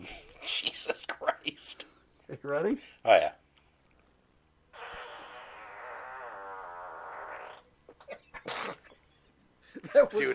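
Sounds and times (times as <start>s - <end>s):
speech: 0.1s - 0.7s, 2.4s - 3.4s, 10.1s - 10.3s
short sharp fart bursts: 4.7s - 7.7s, 8.4s - 8.8s
long drawn-out fart with wobbling pitch: 4.7s - 8.9s.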